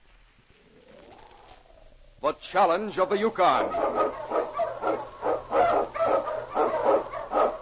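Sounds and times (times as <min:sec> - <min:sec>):
speech: 0:02.2 - 0:04.3
Eskimo lead sled dog barking: 0:03.6 - 0:07.6.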